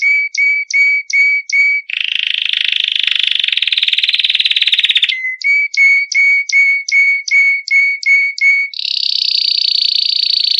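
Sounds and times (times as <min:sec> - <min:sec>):
canary song: 0:00.0 - 0:10.5.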